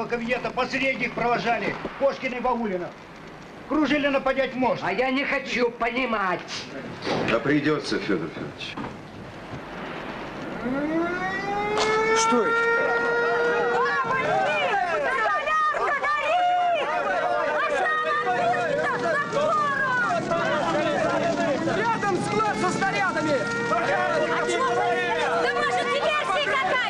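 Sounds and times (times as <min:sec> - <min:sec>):
speech: 0:00.0 - 0:03.1, 0:03.7 - 0:09.1, 0:10.6 - 0:12.7
workers shouting while hurrying to put out a burning roof: 0:10.6 - 0:26.8.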